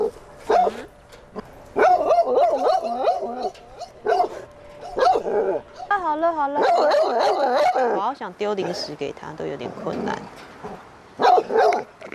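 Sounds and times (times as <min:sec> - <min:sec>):
dog barking: 0:00.5 - 0:00.9, 0:01.8 - 0:05.9, 0:06.6 - 0:08.0, 0:11.2 - 0:11.9
speech: 0:06.4 - 0:06.8, 0:08.0 - 0:10.9.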